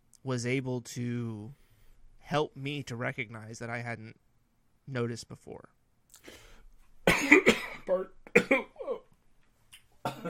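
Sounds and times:
speech: 0.2s - 1.6s, 2.3s - 4.2s, 4.9s - 6.4s, 7.2s - 8.7s
harsh raspy hacking coughing: 7.0s - 9.1s, 10.0s - 10.2s.

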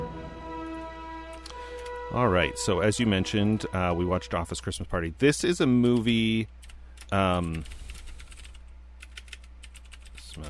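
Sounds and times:
steady low hum: 0.0s - 6.5s
speech: 2.1s - 7.8s
typing on a computer keyboard: 5.8s - 10.4s.

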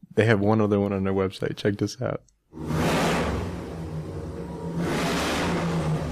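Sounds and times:
speech: 0.2s - 2.7s
loud deep big-block motorcycle engine revving: 2.6s - 6.1s.

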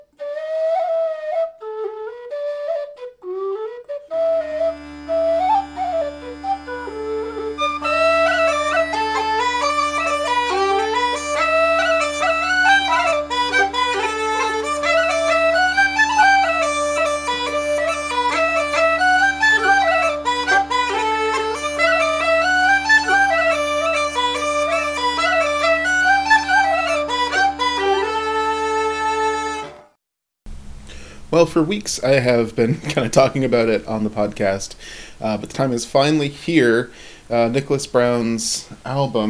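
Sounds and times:
pipes playing a lively ornamented traditional melody: 0.0s - 30.0s
steady droning tones of pipes: 4.2s - 29.7s
speech: 31.4s - 39.2s.

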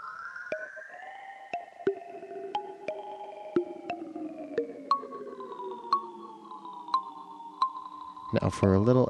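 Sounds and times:
sharp repeating pings: 0.5s - 8.4s
ghostly smeared reverb from a guitar pedal with drag knob adjusted: 1.8s - 9.0s
speech: 8.3s - 9.0s.

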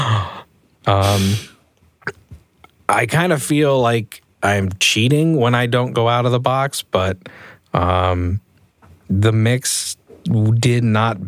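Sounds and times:
person gasping: 0.0s - 1.6s
speech: 0.8s - 1.5s, 2.9s - 8.4s, 9.1s - 11.2s.

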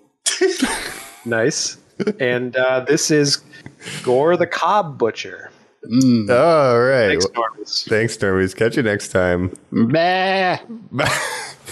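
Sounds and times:
laughter: 0.4s - 2.3s, 11.0s - 11.6s
speech: 0.4s - 11.6s
person imitating a sheep bleat: 9.8s - 10.8s.

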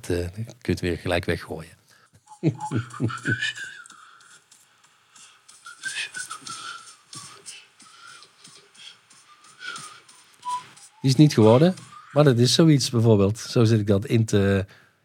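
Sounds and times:
speech: 0.0s - 1.8s, 2.4s - 3.8s, 11.0s - 14.8s
soft whistled melody on a voice memo: 2.2s - 4.5s, 5.2s - 13.0s
laughter: 2.4s - 3.7s.

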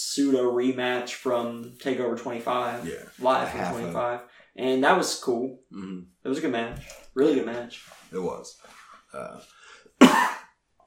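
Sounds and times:
speech: 0.2s - 10.4s
quiet breathy murmur: 2.8s - 4.0s
loud person coughing: 10.0s - 10.5s.

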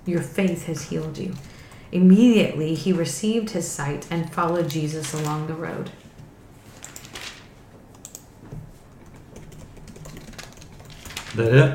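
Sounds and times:
keyboard typing: 0.0s - 1.9s, 4.3s - 5.6s, 6.8s - 11.7s
speech: 0.0s - 6.0s, 11.4s - 11.7s
low hum: 0.0s - 11.7s.

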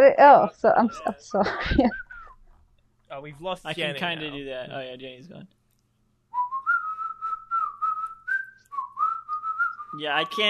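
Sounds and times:
speech: 0.0s - 2.0s, 3.1s - 5.6s, 9.9s - 10.4s
laughter: 0.6s - 2.3s, 3.2s - 4.6s
person whistling a high-pitched tune: 6.4s - 10.3s.

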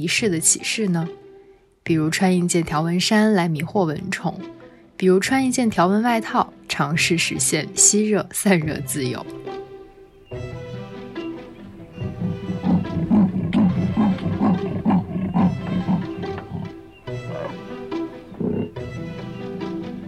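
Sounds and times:
speech: 0.0s - 1.2s, 1.8s - 9.7s
tiger growling: 11.6s - 19.6s
tiger roaring: 11.9s - 18.9s.

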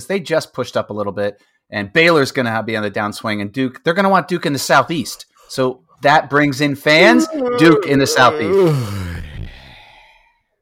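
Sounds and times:
speech: 0.0s - 9.2s
person yawning with a breathy voiced groan: 7.0s - 9.9s.

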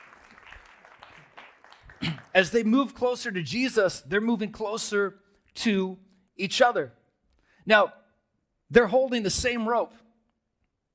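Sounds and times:
audience applause: 0.0s - 2.6s
speech: 2.0s - 7.0s, 7.6s - 8.0s, 8.7s - 10.0s.

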